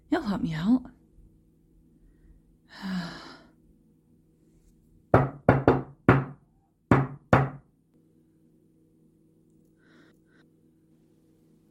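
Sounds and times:
low steady hum: 0.0 - 11.6
speech: 0.2 - 1.0
heavy sigh: 2.7 - 3.6
firm knocks on a neighbour's door: 5.1 - 7.7.

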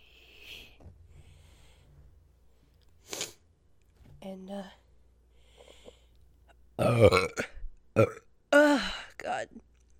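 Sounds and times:
speech: 4.4 - 4.8, 6.8 - 8.2
loud croaky burps: 6.8 - 8.3.

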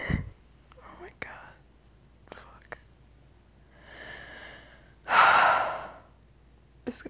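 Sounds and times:
human breathing: 3.7 - 6.2.

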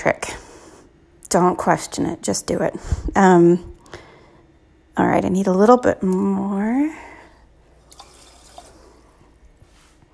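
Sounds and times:
speech: 0.0 - 0.4, 1.3 - 4.0, 5.0 - 7.1
water poured into a pot of rice: 7.8 - 9.2.

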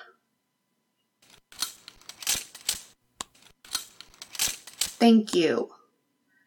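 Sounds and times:
metallic clicking and rattling of handcuffs being unlocked: 1.2 - 5.2
speech: 5.0 - 5.8.

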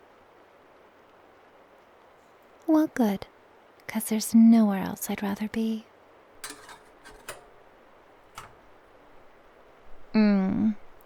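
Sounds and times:
speech: 2.7 - 3.3, 3.9 - 6.6
cups and dishes clinking while making tea: 6.4 - 7.6, 8.4 - 8.7
person humming: 10.2 - 10.8.

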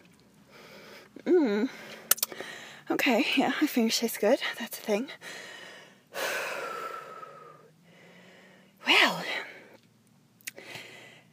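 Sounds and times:
person breathing heavily catching their breath after exertion: 0.5 - 2.9, 5.2 - 8.8, 10.6 - 11.3
speech: 2.9 - 5.5.

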